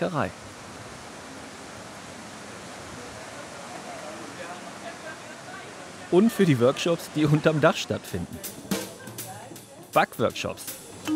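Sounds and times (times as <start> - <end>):
speech: 0.0 - 0.5, 6.1 - 8.7, 10.0 - 11.1
water churning around the turning wheel of a restored flour mill: 1.9 - 8.7.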